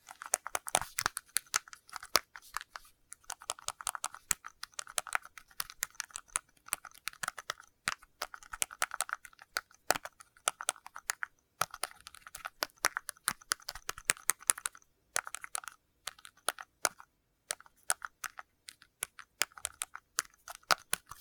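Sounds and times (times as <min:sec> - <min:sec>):
typing on plastic laptop keyboard: 0:00.0 - 0:21.1.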